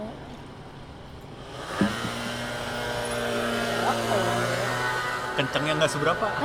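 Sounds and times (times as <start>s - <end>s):
Mio motor scooter engine revving: 1.4s - 6.4s
speech: 5.4s - 6.4s.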